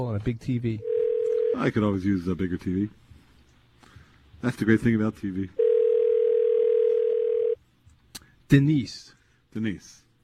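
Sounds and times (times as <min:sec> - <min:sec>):
speech: 0:00.0 - 0:00.9, 0:01.5 - 0:03.0, 0:04.4 - 0:05.6, 0:08.5 - 0:10.0
telephone dial tone: 0:00.8 - 0:01.6, 0:05.6 - 0:07.6.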